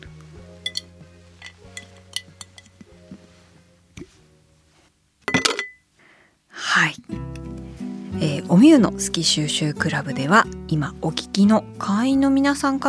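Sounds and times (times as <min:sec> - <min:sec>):
soft steady musical hum: 0:00.0 - 0:05.1, 0:06.6 - 0:12.8
coaster dropping into a glass jar with a rattling clatter: 0:00.6 - 0:02.8
light clinks and taps against glass: 0:00.6 - 0:02.8, 0:05.3 - 0:05.8
speech: 0:08.2 - 0:12.8.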